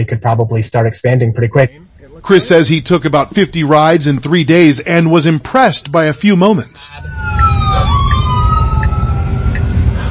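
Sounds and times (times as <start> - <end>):
speech: 0.0 - 7.3
heavy road rumble: 1.8 - 10.0
ambulance siren wailing: 6.5 - 10.0.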